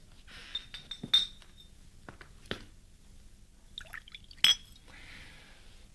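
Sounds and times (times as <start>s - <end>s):
glass clinks: 0.5s - 1.7s, 3.8s - 4.8s
wine pouring into glasses: 3.8s - 4.8s.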